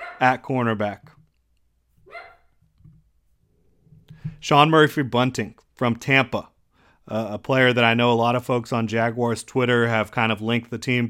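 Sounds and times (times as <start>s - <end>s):
dog barking: 0.0s - 0.3s, 2.1s - 2.5s
speech: 0.2s - 1.2s, 4.4s - 6.5s, 7.1s - 11.0s.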